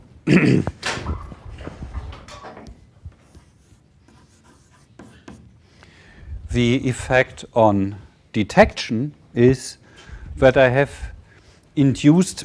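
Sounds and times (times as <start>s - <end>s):
writing on a board during a lecture: 3.1s - 5.6s
speech: 6.6s - 9.8s, 10.4s - 11.1s, 11.8s - 12.4s.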